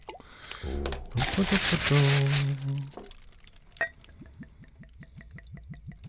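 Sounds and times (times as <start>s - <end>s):
rhythmic liquid sounds: 0.0s - 6.0s
person exclaiming: 1.2s - 2.9s
paper wrapping crinkling as it is pulled off a bottle: 1.2s - 4.2s
speech: 1.4s - 3.0s.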